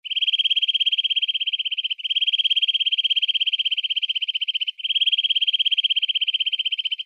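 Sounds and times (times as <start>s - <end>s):
nuthatch calling: 0.0s - 7.0s.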